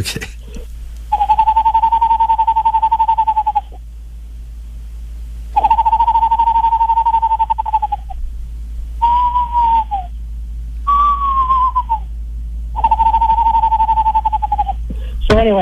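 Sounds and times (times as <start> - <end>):
speech: 0.0 - 0.4
person whistling an imitation of an Eastern screech owl: 1.1 - 3.8, 5.6 - 8.1, 9.0 - 10.2, 10.8 - 12.1, 12.7 - 15.1.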